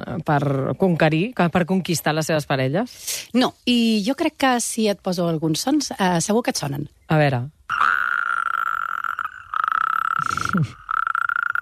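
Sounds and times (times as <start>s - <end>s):
speech: 0.2s - 8.0s, 10.5s - 10.8s
frogs and toads croaking at night: 7.6s - 11.6s.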